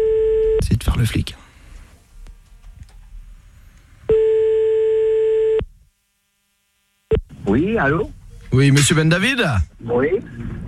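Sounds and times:
telephone line tone while a call is being placed: 0.0s - 0.6s, 4.1s - 5.6s
faint low rumble: 0.0s - 10.6s
speech: 0.9s - 1.4s, 7.6s - 10.4s.

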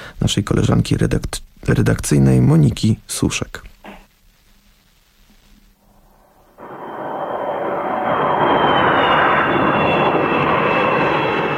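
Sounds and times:
speech: 0.2s - 3.7s
private jet flying overhead above Glasgow, Scotland: 6.2s - 11.5s.

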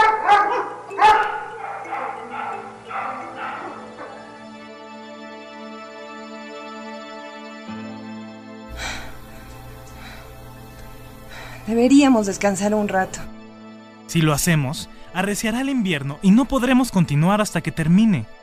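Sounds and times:
pack of wild dogs barking: 0.0s - 4.7s
speech: 11.7s - 13.4s, 14.1s - 18.4s.

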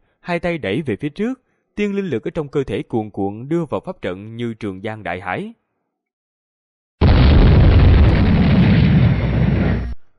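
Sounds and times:
speech: 0.2s - 5.6s
explosions rumbling inside a sealed secret chamber: 7.0s - 10.0s.

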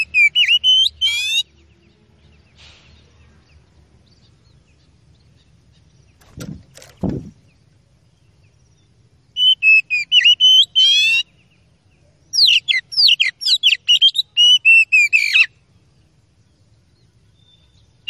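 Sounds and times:
Oriental magpie-robin song: 0.0s - 18.0s
low thumps: 6.2s - 7.5s.

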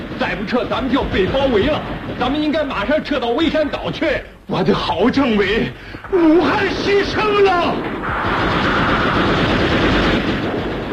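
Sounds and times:
machine gun fire in a dramatized battle scene: 0.0s - 3.8s, 6.1s - 10.9s
speech: 0.3s - 8.6s.

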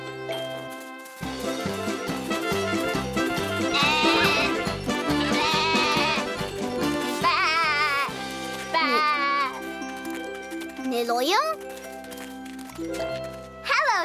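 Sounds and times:
bouncy musical backing with jingling: 0.0s - 14.0s
herd of goats bleating: 3.5s - 9.7s.

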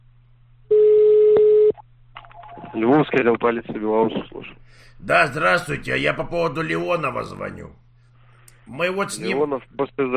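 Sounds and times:
telephone busy tone after call disconnected: 0.7s - 1.8s
speech: 2.8s - 7.8s, 8.7s - 10.1s.

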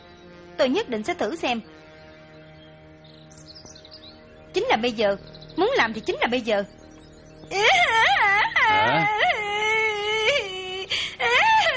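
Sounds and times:
speech: 0.6s - 1.8s, 4.6s - 6.8s, 7.5s - 9.2s
person crying aloud with wailing sobs: 7.5s - 11.7s.

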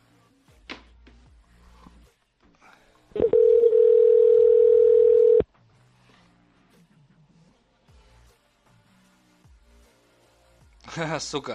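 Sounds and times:
telephone ringing tone as a call is dialed: 3.2s - 5.4s
speech: 11.0s - 11.5s.

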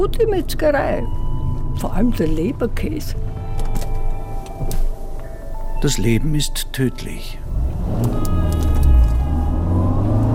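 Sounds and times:
speech: 0.0s - 1.2s, 1.8s - 3.4s, 5.8s - 8.2s
car engine rumbling while driving: 0.0s - 10.3s.

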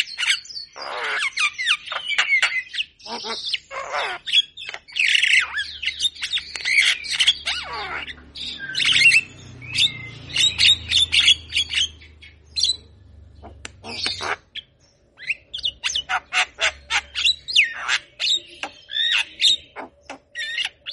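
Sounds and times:
Javan myna singing with scratchy squawks and rasping chatter: 0.1s - 20.8s
sharp clicks: 13.5s - 14.3s.

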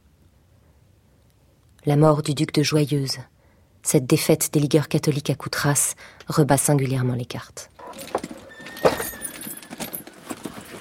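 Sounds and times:
speech: 1.8s - 8.2s
horse hooves shuffling: 7.8s - 10.7s
horse tack jangling as a horse is saddled: 7.8s - 10.7s.

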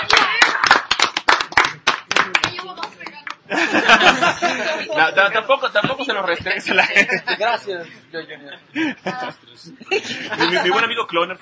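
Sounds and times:
audience clapping at a comic convention event: 0.0s - 3.5s
laughter: 3.5s - 5.4s, 6.3s - 11.0s
speech: 4.6s - 11.4s.

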